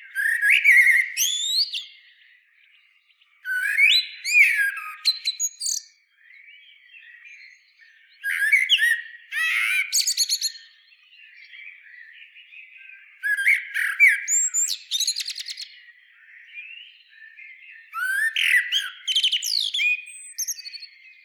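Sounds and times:
common blackbird Turdus merula singing warbled phrases with scratchy twittering: 0:00.0 - 0:21.2
faint bird chatter: 0:00.0 - 0:21.2.

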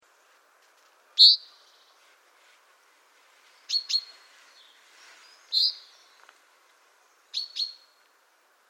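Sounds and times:
faint background hiss: 0:00.0 - 0:08.6
chaffinch calls, Fringilla coelebs: 0:01.2 - 0:01.9, 0:03.6 - 0:06.2, 0:07.2 - 0:08.0.

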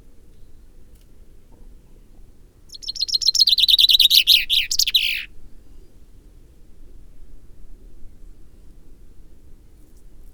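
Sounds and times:
Common Chaffinch Fringilla coelebs singing: 0:02.7 - 0:05.3.

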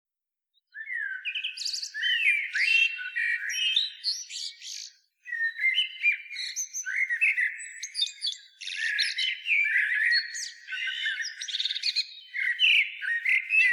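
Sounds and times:
Eurasian blackbird Turdus merula singing: 0:00.6 - 0:13.7.

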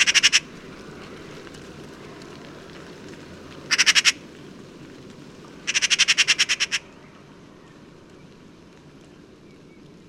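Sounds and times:
Eurasian magpie Pica pica chattering: 0:00.0 - 0:00.4, 0:03.7 - 0:04.2, 0:05.7 - 0:06.8.

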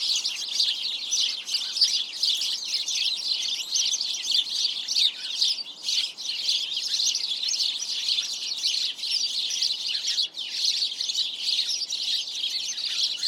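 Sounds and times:
house sparrows Passer domesticus chirping in a noisy chorus: 0:00.0 - 0:13.2.

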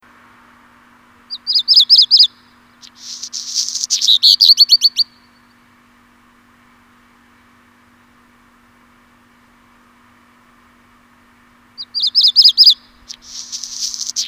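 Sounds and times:
faint steady hum: 0:00.0 - 0:14.2
Black Redstart song, Phoenicurus ochruros: 0:01.3 - 0:05.4, 0:11.8 - 0:14.2.

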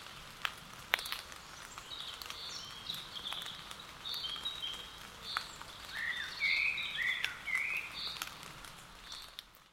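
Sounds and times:
common blackbird singing warbled phrases: 0:01.0 - 0:08.4.

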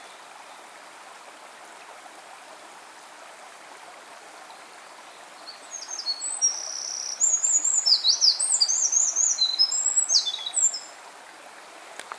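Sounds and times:
background hiss: 0:00.0 - 0:12.1
Eurasian wren Troglodytes troglodytes singing high rapid trills: 0:05.4 - 0:10.9.

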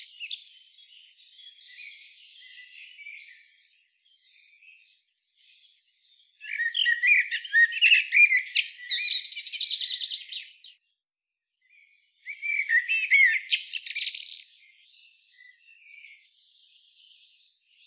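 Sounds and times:
common blackbird Turdus merula twittering: 0:00.0 - 0:03.3, 0:06.4 - 0:10.8, 0:12.3 - 0:14.7.

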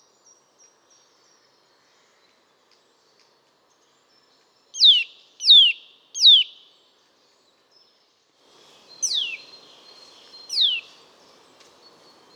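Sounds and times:
faint background hiss: 0:00.0 - 0:12.3
Eurasian nuthatch Sitta europaea whistled calls: 0:04.8 - 0:06.6, 0:09.0 - 0:11.0.

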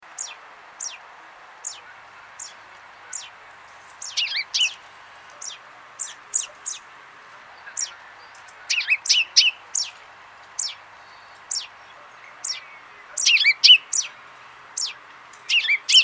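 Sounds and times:
soft hissing background: 0:00.0 - 0:16.0
common chaffinch Fringilla coelebs calling: 0:00.1 - 0:01.0, 0:01.6 - 0:03.4, 0:04.0 - 0:04.8, 0:05.4 - 0:06.9, 0:07.5 - 0:10.0, 0:10.6 - 0:14.2, 0:14.8 - 0:16.0.

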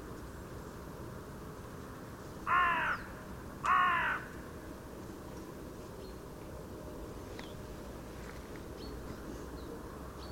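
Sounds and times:
Carrion crow cawing: 0:02.5 - 0:04.4.

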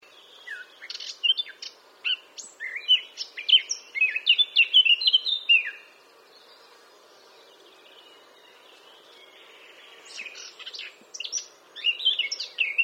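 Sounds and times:
Eurasian blackcap Sylvia atricapilla singing: 0:00.1 - 0:05.9, 0:10.1 - 0:12.8.

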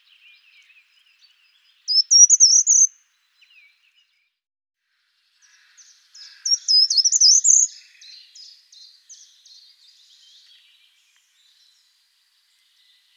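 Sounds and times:
short-toed treecreeper certhia brachydactyla song: 0:00.0 - 0:04.1, 0:05.5 - 0:11.8.

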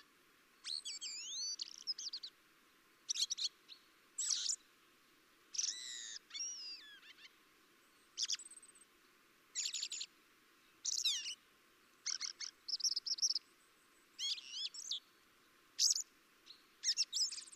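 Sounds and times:
common blackbird giving high sharp chirps and downward-sweeping notes: 0:00.6 - 0:02.4, 0:03.1 - 0:04.6, 0:05.5 - 0:08.8, 0:09.5 - 0:10.1, 0:10.8 - 0:11.4, 0:12.0 - 0:13.5, 0:14.2 - 0:15.2, 0:15.8 - 0:17.5.

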